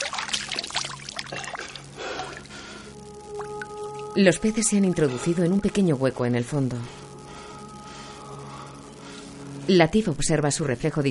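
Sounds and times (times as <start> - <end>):
water splashed onto a face from a small pond of orange fish: 0.0 - 2.6
water trickling: 0.0 - 2.6, 3.2 - 4.2
faint tonal sounds: 0.2 - 11.0
speech: 4.2 - 7.0, 9.7 - 11.0.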